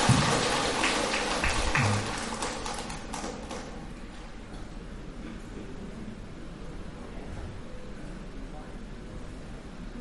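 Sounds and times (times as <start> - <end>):
crowd at a Buddhist gathering clapping: 0.0 - 3.8.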